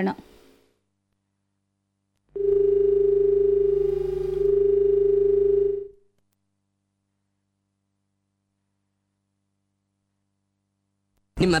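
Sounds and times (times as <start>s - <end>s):
telephone line tone as a radio phone-in call connects: 2.3s - 6.0s.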